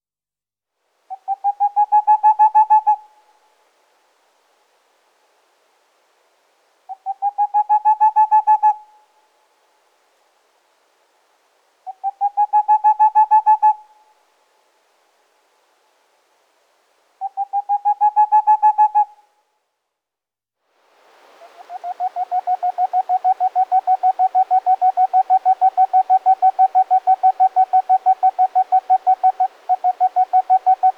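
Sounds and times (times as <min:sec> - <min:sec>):
Tengmalm's owl calling: 0:01.1 - 0:03.3, 0:06.9 - 0:09.0, 0:11.9 - 0:14.1, 0:17.2 - 0:19.2, 0:21.4 - 0:30.9.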